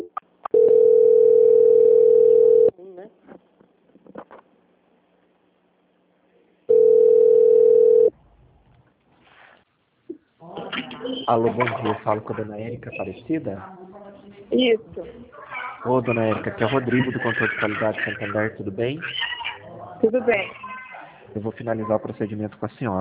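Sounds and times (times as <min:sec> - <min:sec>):
telephone ringback tone while a call is transferred: 0:00.5 - 0:02.7, 0:06.7 - 0:08.1
laughter: 0:10.4 - 0:13.2, 0:15.6 - 0:20.1
speech: 0:11.3 - 0:13.8, 0:14.5 - 0:19.3, 0:20.0 - 0:20.6, 0:21.3 - 0:23.0.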